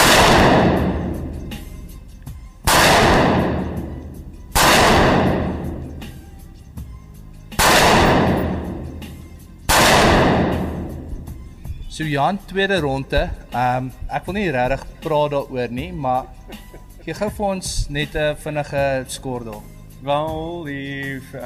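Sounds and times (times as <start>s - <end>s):
223 rifle shots at 25 meters: 0.0s - 2.0s, 2.7s - 6.2s, 7.6s - 11.4s
speech: 12.0s - 21.4s
laughter: 16.2s - 17.5s.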